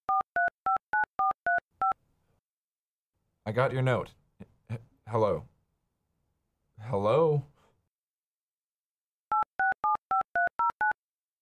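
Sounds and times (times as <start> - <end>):
two-pitched electronic telephone beeps on an unanswered call: 0.1 - 2.0, 9.3 - 11.0
speech: 3.4 - 5.5, 6.8 - 7.5.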